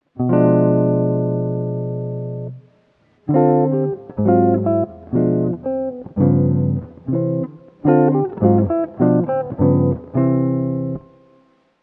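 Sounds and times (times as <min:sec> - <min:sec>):
guitar: 0:00.0 - 0:11.8.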